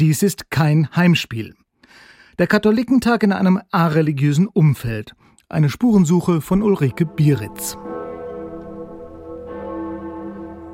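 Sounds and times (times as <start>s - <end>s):
speech: 0.0s - 7.9s
huge free-swinging medieval cathedral bell ringing: 6.5s - 10.7s.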